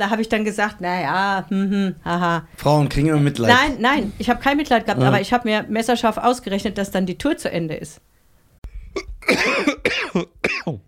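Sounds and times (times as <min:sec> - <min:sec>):
speech: 0:00.0 - 0:08.1, 0:09.0 - 0:10.8
person coughing: 0:09.0 - 0:10.8.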